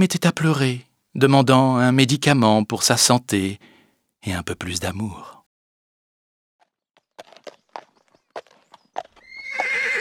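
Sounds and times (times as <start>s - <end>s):
speech: 0.0s - 5.4s
horse hooves clopping: 6.6s - 9.9s
loud rising horse whinny: 9.2s - 9.9s.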